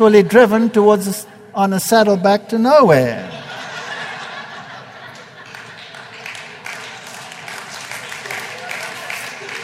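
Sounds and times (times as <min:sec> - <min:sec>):
speech: 0:00.0 - 0:03.4
scattered laughter: 0:03.3 - 0:06.0
large audience clapping: 0:05.0 - 0:09.6.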